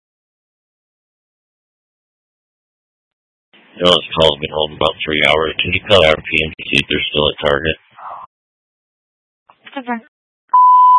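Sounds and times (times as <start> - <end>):
speech: 3.8 - 7.8, 9.8 - 10.1
burst of radio voice: 3.8 - 8.3
radio dispatch alert beep marking emergency traffic: 10.5 - 10.9.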